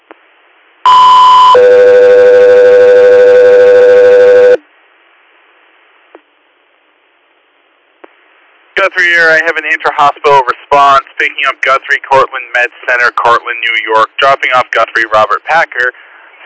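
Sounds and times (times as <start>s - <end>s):
two-tone radio dispatch alert for an ambulance call: 0.9s - 4.6s
speech: 8.9s - 16.0s.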